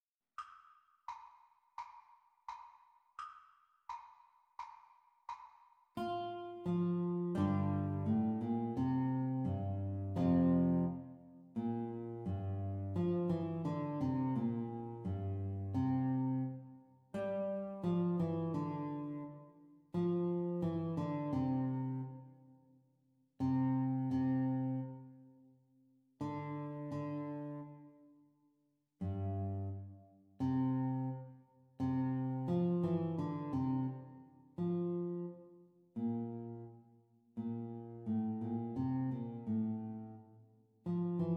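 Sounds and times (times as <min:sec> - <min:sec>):
guitar duet playalong at exam speed: 0:06.0 - 0:22.3, 0:23.4 - 0:25.1, 0:26.2 - 0:28.0, 0:29.0 - 0:35.4, 0:36.0 - 0:36.8, 0:37.4 - 0:40.2, 0:40.8 - 0:41.3.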